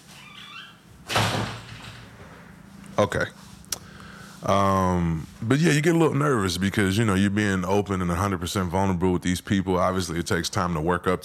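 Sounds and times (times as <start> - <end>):
door squeaking: 0.0 - 2.2
door slamming shut: 1.0 - 2.2
speech: 3.0 - 3.4, 4.4 - 11.2.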